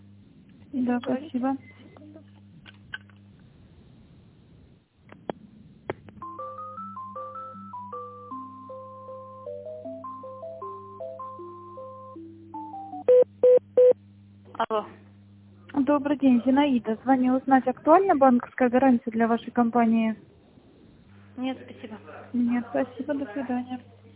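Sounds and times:
steady low electronic hum on a telephone line: 0:00.0 - 0:24.1
speech: 0:00.7 - 0:01.8, 0:16.0 - 0:20.3, 0:21.4 - 0:23.9
simple stepping electronic melody while a business call is transferred: 0:06.2 - 0:13.2.

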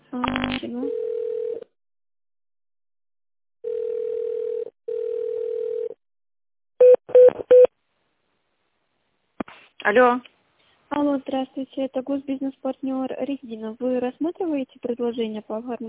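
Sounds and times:
long steady mid-pitched telephone tones during call transfer: 0:00.3 - 0:01.7, 0:03.6 - 0:06.0
short telephone beeps during call transfer: 0:06.8 - 0:07.7
speech: 0:09.9 - 0:10.3, 0:10.9 - 0:15.8.

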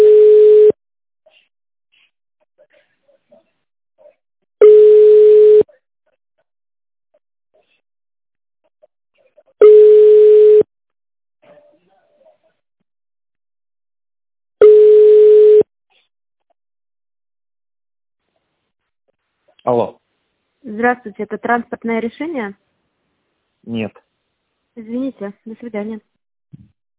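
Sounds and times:
telephone line tone while a caller waits on hold: 0:00.0 - 0:00.8, 0:04.6 - 0:05.6, 0:09.6 - 0:10.7, 0:14.6 - 0:15.6
speech: 0:20.8 - 0:22.7, 0:23.6 - 0:24.0, 0:24.8 - 0:26.7.

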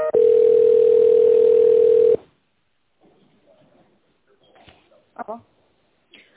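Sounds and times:
telephone tones as a call is connected: 0:00.1 - 0:02.2.

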